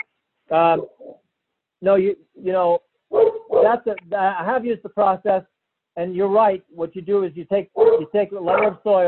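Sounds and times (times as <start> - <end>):
speech: 0.5 - 1.0, 1.8 - 2.9, 3.6 - 9.0
dog barking in a hotel room: 3.1 - 3.8, 7.8 - 8.8.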